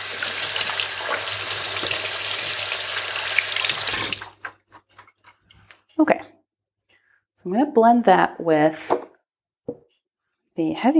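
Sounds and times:
tap water running over hands being rinsed: 0.0s - 4.9s
speech: 6.0s - 6.2s, 7.4s - 9.0s, 10.6s - 10.9s.

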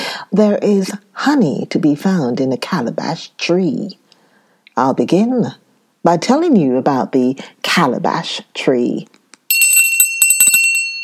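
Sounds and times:
speech: 0.2s - 4.0s, 4.8s - 9.2s
small bell ringing: 9.5s - 11.0s.

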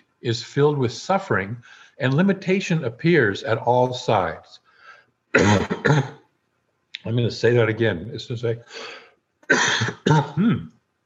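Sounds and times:
speech: 0.2s - 4.6s, 5.3s - 6.2s, 7.0s - 10.7s
person clearing throat in rough guttural bursts: 5.4s - 6.2s, 9.5s - 10.7s.

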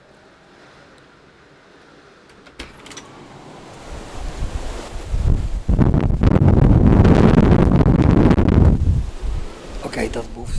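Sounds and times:
storm wind buffeting a microphone without a windscreen: 3.0s - 10.5s.

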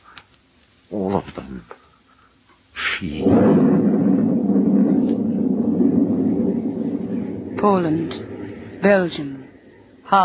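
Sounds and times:
speech: 0.9s - 1.8s, 3.0s - 3.9s, 7.6s - 9.3s
loud thunder crash after lightning with deep sustained rumble: 3.0s - 10.1s.

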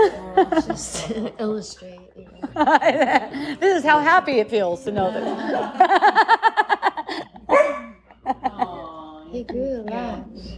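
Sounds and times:
laughter: 0.0s - 1.4s, 2.4s - 3.9s, 5.0s - 10.1s
speech: 0.1s - 6.5s, 9.4s - 10.5s
dog barking in high yappy barks: 7.5s - 8.0s.

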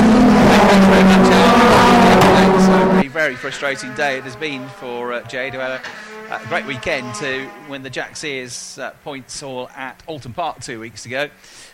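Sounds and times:
Honda and Hyundai racing car engines roaring at Croft circuit: 0.0s - 10.1s
speech: 3.3s - 11.7s.

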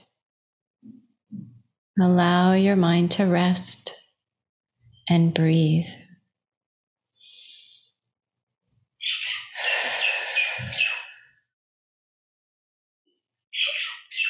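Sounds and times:
speech: 2.0s - 4.0s, 5.1s - 6.0s
birds chirping and singing: 9.0s - 11.2s, 13.6s - 14.2s.

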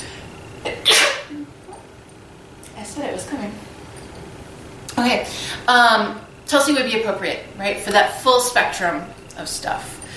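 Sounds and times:
person sneezing close to the microphone: 0.7s - 1.4s
speech: 3.0s - 3.7s, 5.0s - 10.1s.

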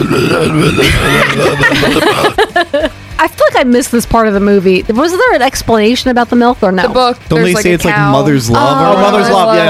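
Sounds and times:
person imitating a movie troll voice with a gurgling throaty croak: 0.0s - 1.7s
speech: 0.4s - 2.7s, 3.6s - 9.6s
laughter: 0.4s - 3.0s.

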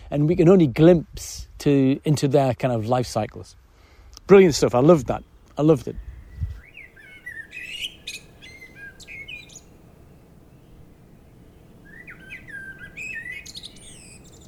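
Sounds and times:
speech: 0.1s - 3.6s, 4.3s - 6.1s
steady low rumble: 4.8s - 14.4s
blackbird singing outdoors: 5.2s - 14.4s.

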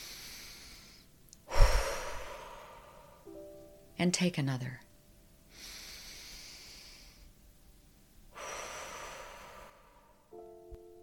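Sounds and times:
deep breath in and out: 0.0s - 3.3s, 5.5s - 7.3s, 8.3s - 10.3s
speech: 4.0s - 4.8s.

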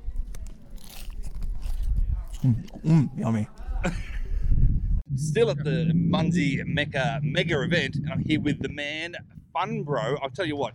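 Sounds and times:
steady crackly chewing: 0.0s - 3.7s
crunching bite of walking taco tortilla chips: 0.2s - 3.0s
speech: 2.4s - 4.1s, 5.2s - 10.7s.

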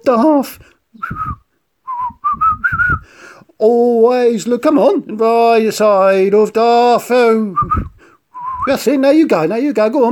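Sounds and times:
speech: 0.0s - 1.4s, 3.1s - 7.9s, 8.7s - 10.0s
person whistling a cheerful tune: 1.0s - 3.1s, 7.6s - 8.8s.

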